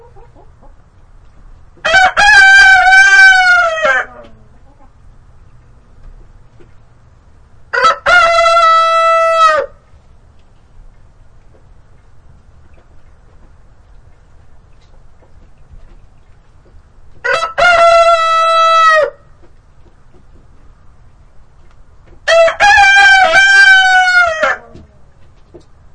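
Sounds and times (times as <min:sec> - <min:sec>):
two roosters crowing: 0:01.8 - 0:04.5, 0:07.7 - 0:09.9, 0:17.2 - 0:19.4, 0:22.2 - 0:25.0.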